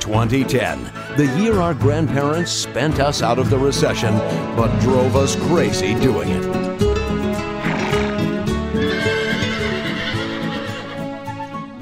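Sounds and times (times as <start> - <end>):
speech: 0.1 - 6.8
horse neighing: 7.4 - 11.5.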